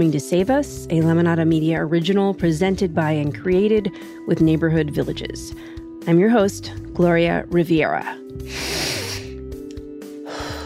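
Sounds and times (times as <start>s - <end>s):
speech: 0.0s - 8.8s
deep breath in: 8.5s - 9.4s, 10.2s - 10.6s.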